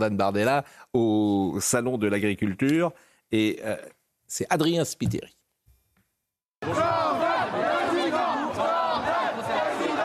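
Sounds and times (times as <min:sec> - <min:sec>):
speech: 0:00.0 - 0:05.4, 0:06.6 - 0:07.2
crowd at the Salon de l'Agriculture chanting a politician's first name: 0:06.6 - 0:10.0.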